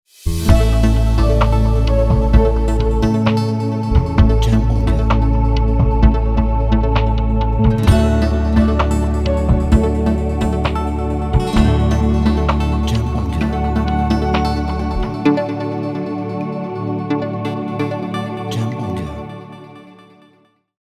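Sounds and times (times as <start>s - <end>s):
electronic ambient intro music: 0.3s - 20.4s.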